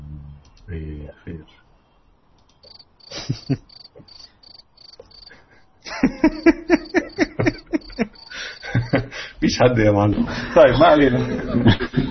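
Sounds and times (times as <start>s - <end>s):
speech: 0.7s - 1.7s, 3.3s - 4.2s, 9.4s - 12.0s
steady high-pitched insect-like chirping: 2.6s - 5.4s, 6.2s - 9.0s
frog croaking: 2.6s - 5.5s, 6.2s - 9.0s
laughter: 3.1s - 3.7s, 5.3s - 9.4s, 10.2s - 12.0s.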